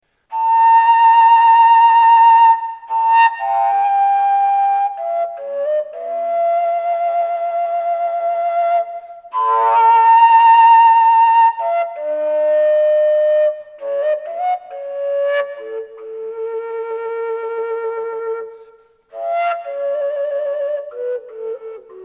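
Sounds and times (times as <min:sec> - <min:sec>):
carved fujara flute: 0:00.1 - 0:22.0.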